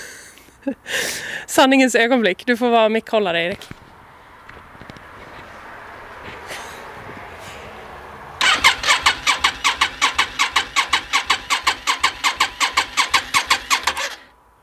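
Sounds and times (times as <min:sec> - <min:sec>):
speech: 0:00.6 - 0:03.8
car engine cranking without starting: 0:08.4 - 0:14.3.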